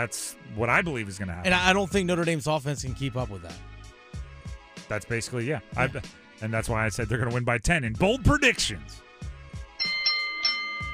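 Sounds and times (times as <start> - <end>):
speech: 0.0 - 3.7, 4.9 - 9.1
doorbell chime: 9.8 - 10.9.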